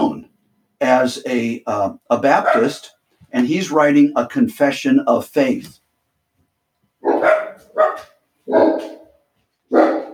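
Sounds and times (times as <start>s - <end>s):
speech: 1.0s - 5.8s, 7.1s - 7.4s
two pet dogs barking: 2.4s - 2.9s, 7.0s - 10.1s.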